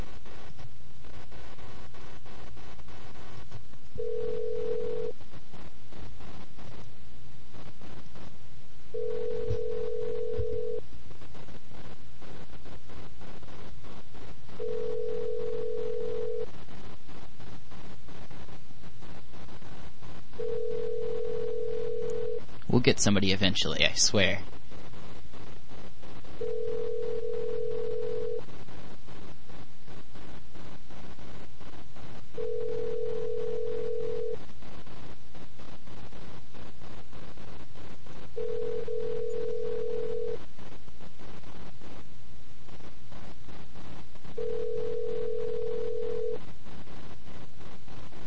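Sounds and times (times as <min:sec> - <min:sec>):
constant hiss of noise: 0:00.0 - 0:48.2
phone line ringback tone: 0:04.0 - 0:05.1, 0:09.0 - 0:10.8, 0:14.6 - 0:16.5, 0:20.4 - 0:22.4, 0:26.4 - 0:28.4, 0:32.4 - 0:34.4, 0:38.4 - 0:40.4, 0:44.4 - 0:46.4
speech: 0:22.8 - 0:24.6.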